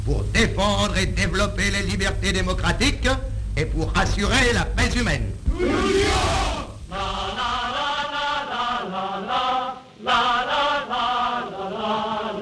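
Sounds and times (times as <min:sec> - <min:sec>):
speech: 0:00.1 - 0:07.2
large crowd chanting a slogan in unison at a march: 0:05.5 - 0:12.4.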